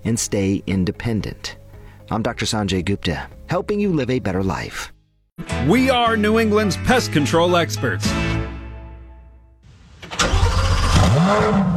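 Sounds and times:
speech: 0.0 - 8.3, 11.3 - 11.7
Corvette car engine starting: 9.7 - 11.7.

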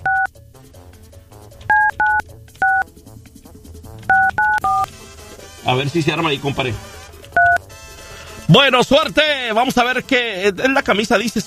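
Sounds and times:
telephone keypad dialing beeps: 0.0 - 0.3, 1.7 - 2.8, 4.1 - 4.9, 7.3 - 7.6
speech: 5.7 - 6.9, 8.5 - 11.4.

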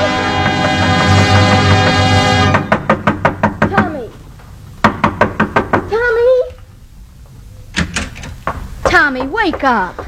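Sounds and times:
knocking on a door: 0.4 - 4.1, 4.8 - 6.0, 7.8 - 10.0
speech: 9.5 - 10.0.

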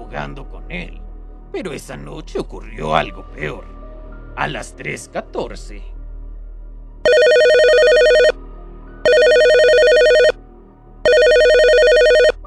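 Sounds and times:
speech: 0.1 - 3.8, 4.4 - 5.9
telephone ringing: 7.1 - 8.3, 9.1 - 10.3, 11.1 - 12.4.

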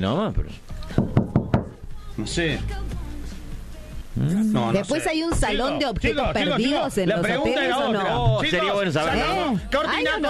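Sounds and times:
speech: 0.0 - 1.1, 2.2 - 3.0, 4.2 - 10.2
sharp knocks on a door: 0.9 - 1.8.

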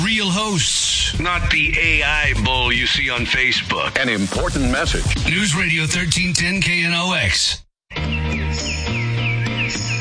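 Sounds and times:
speech: 0.2 - 7.6
birds chirping: 7.9 - 10.0.

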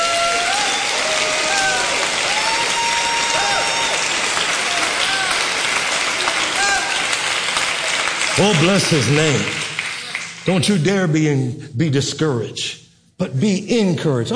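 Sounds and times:
large audience clapping hands: 0.0 - 11.0
speech: 8.4 - 9.6, 10.4 - 14.3.

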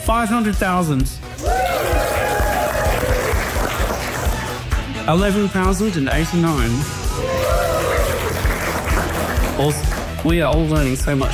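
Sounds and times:
speech: 0.0 - 2.3, 5.0 - 7.4, 9.6 - 11.3
audience whoops and shouts: 1.4 - 4.0, 7.1 - 8.9
audience clapping: 1.4 - 5.0, 7.2 - 10.5.

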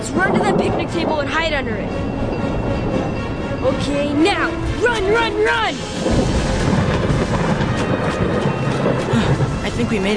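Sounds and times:
rumble of thunder during a lightning storm: 0.0 - 3.2, 5.8 - 10.1
speech: 0.1 - 2.8, 3.6 - 6.8, 9.2 - 10.1.

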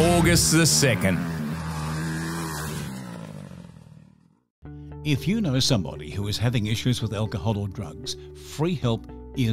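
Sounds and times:
motorcycle engine revving: 0.0 - 4.5
speech: 0.2 - 1.4, 5.0 - 9.5.

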